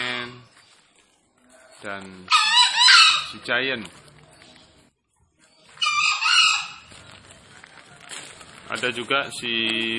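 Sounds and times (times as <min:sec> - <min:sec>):
speech: 0:01.8 - 0:02.5, 0:03.3 - 0:04.1, 0:08.7 - 0:09.9
wild green junglefowl crowing: 0:02.2 - 0:03.4, 0:05.8 - 0:06.9.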